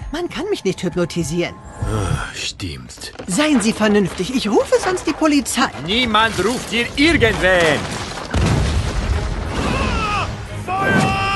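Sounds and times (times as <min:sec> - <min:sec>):
speech: 0:00.1 - 0:08.0
burst of debris noise: 0:02.6 - 0:11.2
old tower collapsing and tearing down a power line with rumbling crash: 0:03.1 - 0:11.2.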